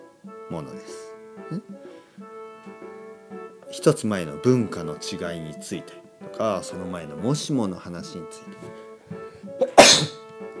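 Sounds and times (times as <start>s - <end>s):
speech: 0.5s - 8.9s
single loud sneeze: 9.6s - 10.2s.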